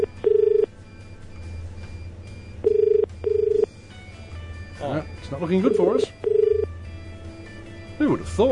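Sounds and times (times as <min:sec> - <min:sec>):
telephone ringing in short double bursts: 0:00.0 - 0:00.7, 0:02.4 - 0:03.8, 0:05.1 - 0:06.9
low hum: 0:00.0 - 0:08.5
speech: 0:05.3 - 0:06.3, 0:08.0 - 0:08.5.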